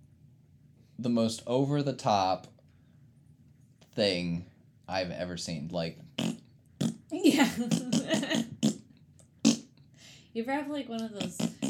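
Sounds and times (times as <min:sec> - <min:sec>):
speech: 0:01.0 - 0:02.6, 0:04.0 - 0:06.4, 0:07.2 - 0:08.5, 0:10.4 - 0:11.6
voice imitating farting with sputtering blasts: 0:06.2 - 0:09.7, 0:11.0 - 0:11.6.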